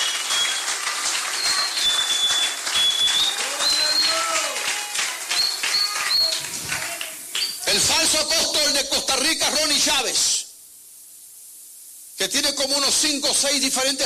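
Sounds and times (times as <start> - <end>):
shrill whistles: 0.0 - 6.5
cheering voices: 0.0 - 7.3
crowd applauding in praise of God: 0.0 - 7.6
speech: 7.8 - 10.4, 12.2 - 14.0.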